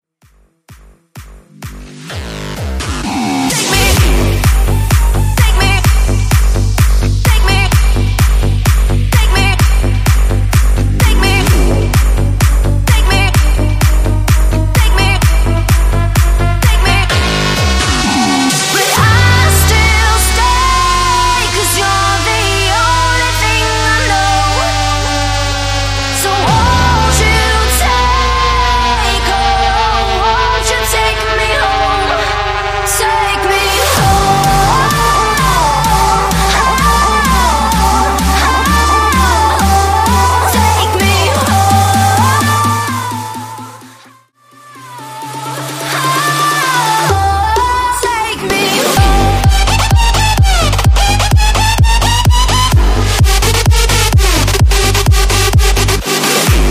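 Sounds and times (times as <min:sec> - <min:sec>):
EDM bounce smashup music: 0:00.0 - 0:56.6.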